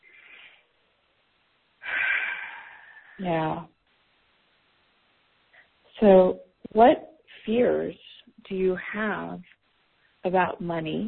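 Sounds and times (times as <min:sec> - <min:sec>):
deep breath taken during a guided session: 0:00.0 - 0:00.7, 0:01.8 - 0:03.2
speech: 0:03.2 - 0:03.7, 0:06.0 - 0:09.5, 0:10.2 - 0:11.0.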